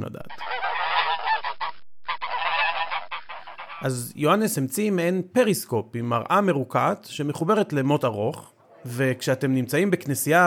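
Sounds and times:
speech: 0:00.0 - 0:00.4, 0:03.8 - 0:10.4
geese honking: 0:00.3 - 0:04.2.

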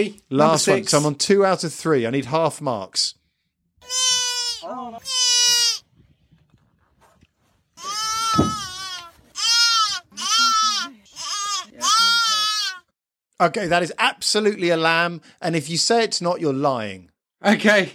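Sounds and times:
speech: 0:00.0 - 0:03.2, 0:04.7 - 0:05.2, 0:13.4 - 0:17.9
young fawn bleating: 0:03.8 - 0:05.8, 0:07.8 - 0:12.9.

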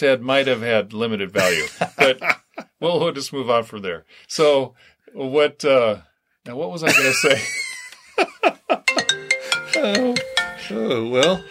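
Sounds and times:
speech: 0:00.0 - 0:08.9, 0:09.8 - 0:11.5
laughter: 0:01.4 - 0:02.7, 0:06.8 - 0:09.1
phone ringing with a melodic ringtone: 0:08.9 - 0:11.5.

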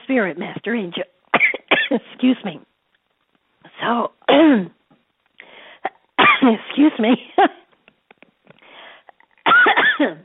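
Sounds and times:
speech: 0:00.1 - 0:01.1, 0:01.9 - 0:02.7, 0:03.8 - 0:04.8, 0:06.4 - 0:07.6, 0:10.0 - 0:10.2
person coughing after something went down the wrong way: 0:01.4 - 0:02.0, 0:05.8 - 0:07.7, 0:09.4 - 0:10.2.

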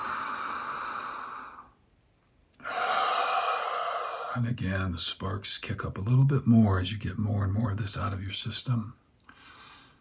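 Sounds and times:
deep breath during a breathing exercise: 0:00.0 - 0:01.8, 0:02.6 - 0:04.4, 0:09.3 - 0:09.9
speech: 0:04.4 - 0:09.0.

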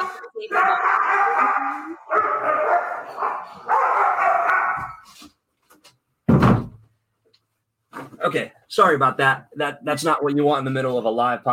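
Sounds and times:
Rottweiler puppy and another dog fighting, growling and barking: 0:00.0 - 0:05.3
loud thump: 0:06.2 - 0:06.9
speech: 0:08.3 - 0:11.5.

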